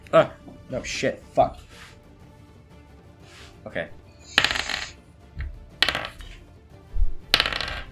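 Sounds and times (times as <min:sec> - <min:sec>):
speech: 0:00.1 - 0:01.9, 0:03.6 - 0:04.0
dice clattering and skittering across a table: 0:04.2 - 0:06.4, 0:07.3 - 0:07.9.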